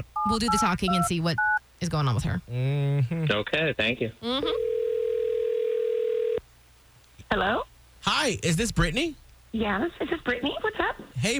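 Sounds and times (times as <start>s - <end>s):
telephone line tone of a call placed by radio hosts in Tampa Bay: 0.0s - 1.6s, 4.5s - 6.4s
speech: 0.0s - 4.7s, 7.3s - 11.3s.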